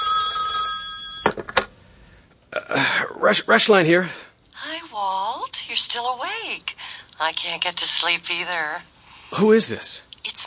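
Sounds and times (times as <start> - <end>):
telephone ringing with a trilling electronic bell: 0.0 - 1.5
speech: 3.2 - 4.3, 5.8 - 10.1.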